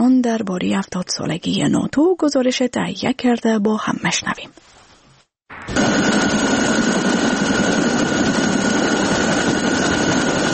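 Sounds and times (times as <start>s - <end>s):
speech: 0.2s - 4.8s
helicopter flying overhead: 5.5s - 10.5s.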